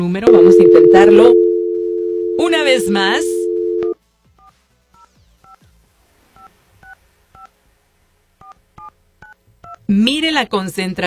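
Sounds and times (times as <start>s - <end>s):
speech: 0.0s - 1.4s, 2.4s - 3.4s, 9.9s - 11.0s
touch-tone telephone keys being dialed: 0.3s - 4.0s.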